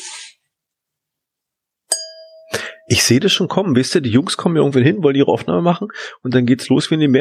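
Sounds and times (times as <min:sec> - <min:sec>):
wine glass struck and ringing: 0:01.9 - 0:03.2
speech: 0:02.9 - 0:07.1.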